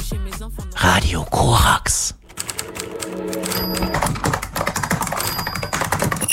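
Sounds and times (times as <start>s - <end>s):
speech: 0.5s - 2.2s
fingers typing on keys: 2.2s - 6.3s.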